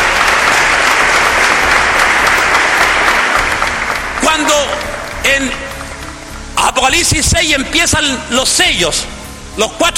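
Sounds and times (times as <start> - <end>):
audience applauding: 0.0 - 6.6
speech: 4.5 - 5.6, 6.8 - 9.9.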